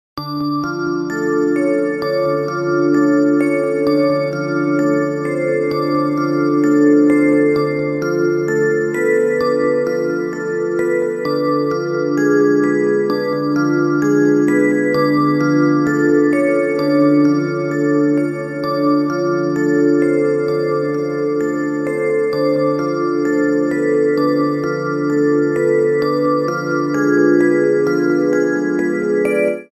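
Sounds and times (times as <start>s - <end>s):
halloween music box ringtone: 0.5s - 29.7s.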